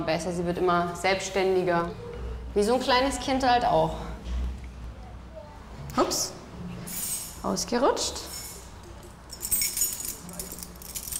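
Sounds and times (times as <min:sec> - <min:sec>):
speech: 0:00.0 - 0:04.1, 0:06.0 - 0:06.4, 0:07.4 - 0:08.3
keys jangling: 0:08.3 - 0:11.1.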